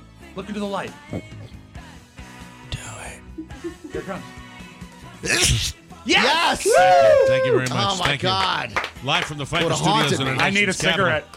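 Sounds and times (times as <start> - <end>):
speech: 0.4 - 1.6, 3.4 - 4.4, 5.2 - 11.3
loud sharp sneeze: 5.3 - 5.8.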